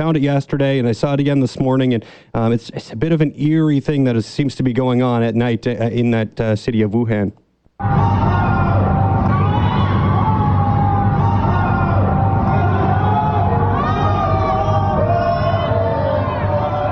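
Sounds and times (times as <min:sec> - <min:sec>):
speech: 0:00.0 - 0:08.2
people shouting from apartment windows at night in Wuhan: 0:07.8 - 0:16.8.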